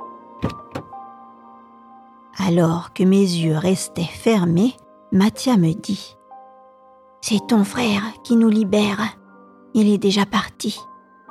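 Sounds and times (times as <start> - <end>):
carriage door opening with faint steady hum: 0.4 - 1.0
latch and lock releasing with sharp mechanical clunks: 0.4 - 1.0
speech: 2.4 - 6.2, 7.2 - 10.9.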